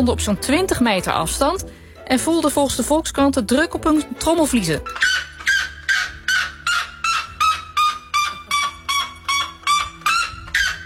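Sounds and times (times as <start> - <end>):
speech: 0.0 - 5.3
white bellbird loud piercing call: 4.9 - 10.8.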